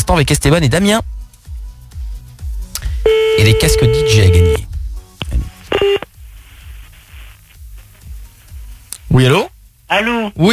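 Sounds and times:
speech: 0.1 - 1.1, 3.4 - 4.7, 9.1 - 10.5
telephone keypad tones dialing a number: 3.1 - 4.6.

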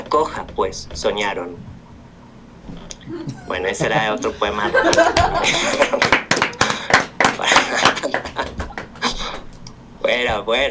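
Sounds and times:
speech: 0.1 - 1.7, 2.7 - 6.6, 10.2 - 10.6
laughter: 3.1 - 9.4
audience applauding after a poetry reading: 4.9 - 9.1.

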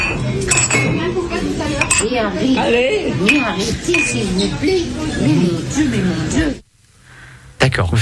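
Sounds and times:
glasses clinking in a toast at a family table: 0.0 - 4.6
lively overlapping chatter of older women: 0.0 - 6.7.

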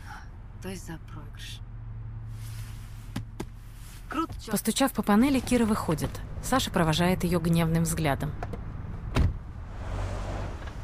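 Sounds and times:
car pulling away with low engine rumble: 0.0 - 10.8
speech: 0.6 - 1.7, 4.1 - 8.6.

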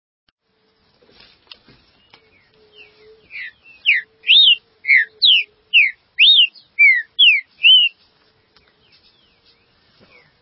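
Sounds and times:
green-winged saltator song: 2.8 - 8.0.

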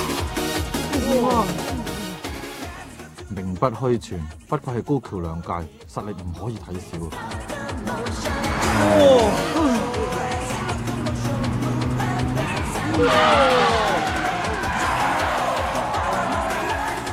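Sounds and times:
speech: 1.1 - 1.8, 3.6 - 9.8, 13.0 - 13.9
engine noise of two cars drifting at speed: 7.0 - 17.1
tire squeal of two cars drifting side by side at speed: 12.4 - 17.1.

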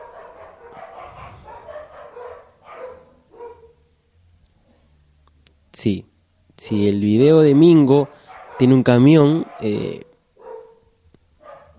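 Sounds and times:
dogs barking faintly: 0.0 - 4.0, 7.8 - 11.7
speech: 5.8 - 10.1.

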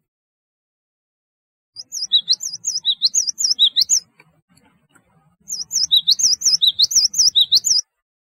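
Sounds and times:
Java sparrow singing high looping tinkling notes: 1.8 - 4.1, 5.4 - 7.9.

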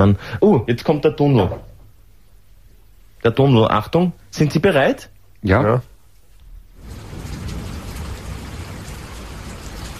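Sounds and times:
speech: 0.0 - 1.7, 3.2 - 5.9
rain sound effect: 6.4 - 9.9.

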